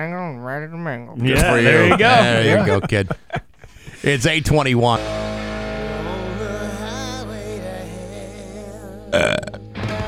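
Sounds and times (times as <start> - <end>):
speech: 0.0 - 3.3, 4.0 - 5.2, 9.1 - 9.6
laughter: 1.2 - 4.4
backing music: 1.3 - 3.0, 3.9 - 10.0
person burping a rock song melody: 9.0 - 9.8.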